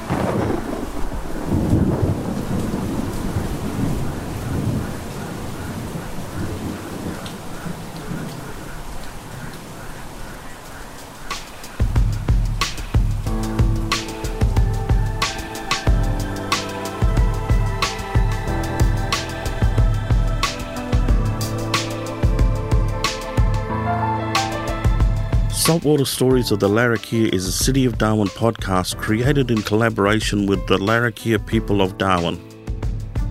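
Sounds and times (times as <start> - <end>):
deep rolling thunder: 0.0 - 10.4, 11.8 - 25.7
steady heavy rain: 0.0 - 26.4
music: 11.3 - 33.2
speech: 25.8 - 32.5.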